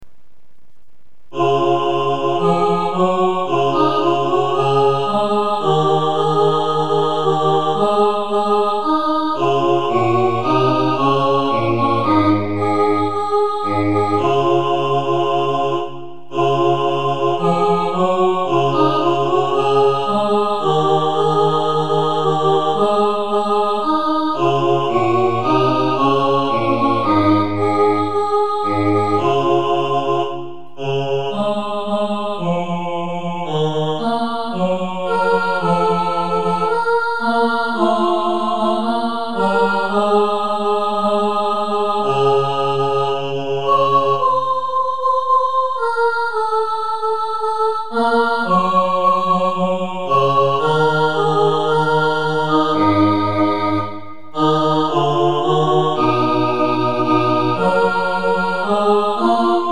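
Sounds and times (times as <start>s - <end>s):
choir singing with bass voices: 1.3s - 59.7s.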